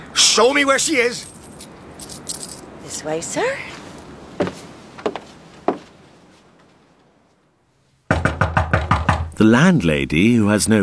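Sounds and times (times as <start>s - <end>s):
speech: 0.2s - 1.4s, 2.9s - 3.7s, 9.4s - 10.8s
firm knocks on a wooden door: 8.1s - 9.4s.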